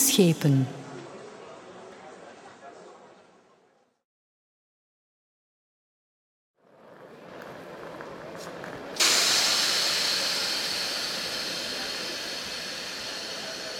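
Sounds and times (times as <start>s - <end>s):
speech: 0.2s - 0.8s
train pulling into a station: 9.0s - 13.7s.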